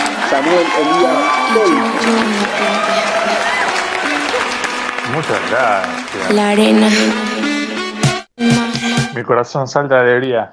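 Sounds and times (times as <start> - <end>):
scattered cheers from a crowd: 0.0 - 6.2
large crowd clapping: 0.0 - 7.7
speech: 0.3 - 3.6, 5.1 - 7.4, 8.4 - 10.5.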